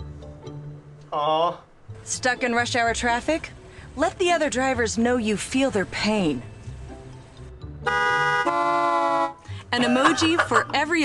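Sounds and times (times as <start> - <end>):
speech: 1.1 - 6.5, 9.8 - 11.0
Honda car horn honking: 7.8 - 10.4.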